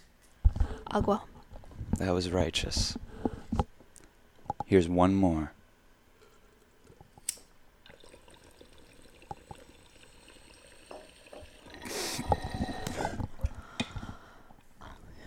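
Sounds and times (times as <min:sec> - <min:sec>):
speech: 0:00.9 - 0:01.3, 0:02.0 - 0:03.1, 0:04.7 - 0:05.6
water bubbling and gurgling in a bong: 0:07.8 - 0:13.4.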